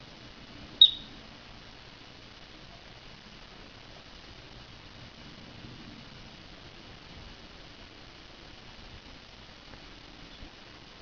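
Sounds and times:
quiet background hiss: 0.0s - 11.0s
adult marmot high whistle: 0.8s - 1.1s.

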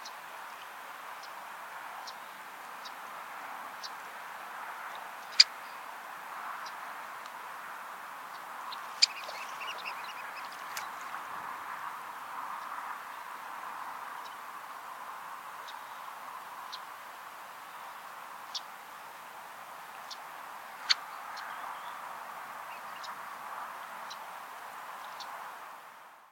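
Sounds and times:
constant background noise: 0.0s - 26.3s
Red-necked phalarope uttering brief clipped high calls: 8.7s - 11.0s.

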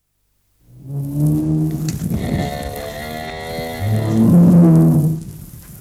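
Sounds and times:
bull bellowing: 0.9s - 5.3s.

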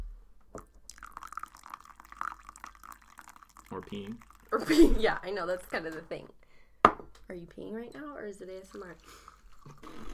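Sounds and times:
coffee pouring into a cup: 0.9s - 6.0s, 8.5s - 10.1s
speech: 3.7s - 6.4s, 7.3s - 9.2s
knock: 6.8s - 7.1s.

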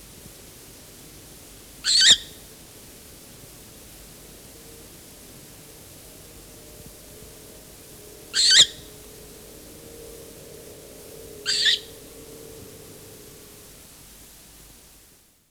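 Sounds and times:
faint low hum: 2.3s - 15.1s
short-eared owl hissing rasps on a nest with young: 6.0s - 13.7s.

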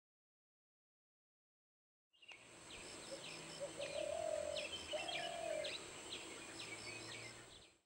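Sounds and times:
other birds chirping: 2.2s - 7.8s
Spotted dove cooing: 3.0s - 7.6s.

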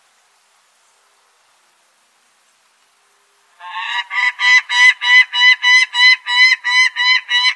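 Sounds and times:
Peregrine falcon giving harsh nasal cackling calls: 3.6s - 7.5s.

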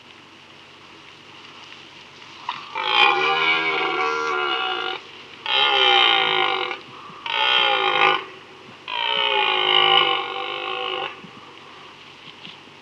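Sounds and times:
Red deer Cervus elaphus roaring: 2.5s - 11.3s.

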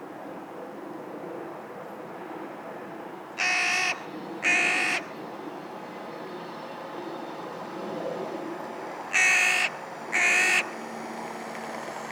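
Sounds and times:
Carrion crow Corvus corone cawing: 3.4s - 5.1s, 9.1s - 10.8s.

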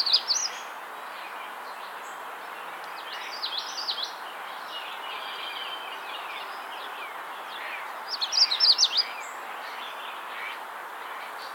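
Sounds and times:
Setophaga magnolia singing: 0.0s - 11.5s.

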